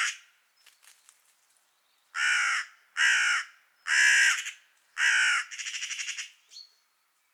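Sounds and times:
Carrion crow Corvus corone harsh cawing and rattling croak: 2.2 - 6.3.

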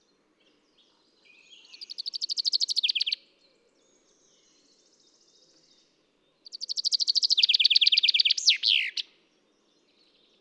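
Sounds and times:
common chaffinch Fringilla coelebs singing: 1.7 - 3.2, 6.5 - 9.1.

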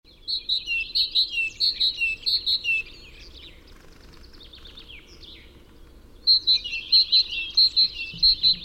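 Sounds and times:
Parus major song: 1.6 - 8.6
soft twittering: 2.8 - 8.6.

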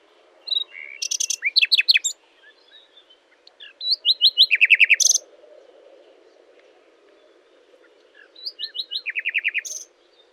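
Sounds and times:
common nightingale Luscinia megarhynchos singing: 0.4 - 5.2, 8.2 - 9.9.

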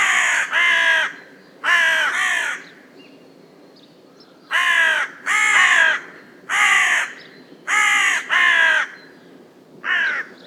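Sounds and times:
Corvus corone carrion crow calling in harsh caws: 0.0 - 2.8, 4.5 - 9.0, 9.8 - 10.4.

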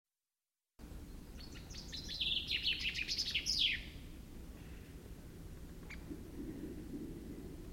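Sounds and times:
low steady background rumble: 0.8 - 7.7
Common chaffinch Fringilla coelebs song: 1.0 - 4.0.

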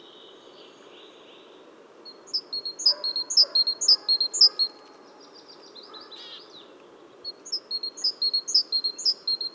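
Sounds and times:
low background noise: 0.0 - 9.5
great tit Parus major chirping: 2.2 - 4.7, 7.4 - 9.5.

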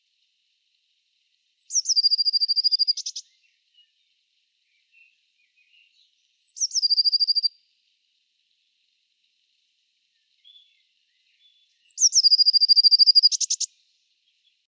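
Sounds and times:
Eurasian blue tit Cyanistes caeruleus calls with high note and fast trill: 1.4 - 3.4, 5.7 - 7.5, 11.4 - 13.7.

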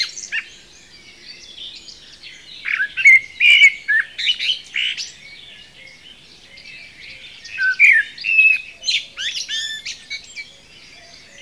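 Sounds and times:
common blackbird Turdus merula singing: 0.0 - 11.3.

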